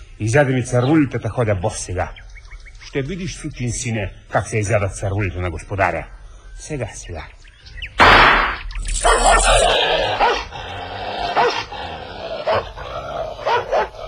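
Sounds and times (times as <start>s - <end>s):
speech: 0.2s - 2.2s, 2.8s - 7.9s
dog growling: 8.9s - 14.0s
dog barking: 9.0s - 10.5s, 11.3s - 11.7s, 12.4s - 14.0s.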